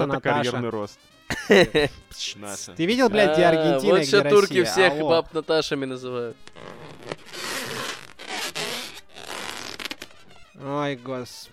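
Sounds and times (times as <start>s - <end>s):
laughter: 0.0s - 0.6s, 1.3s - 2.2s, 3.0s - 5.4s
speech: 0.0s - 7.2s, 10.6s - 11.5s
raspy creaking scrape: 6.4s - 10.4s.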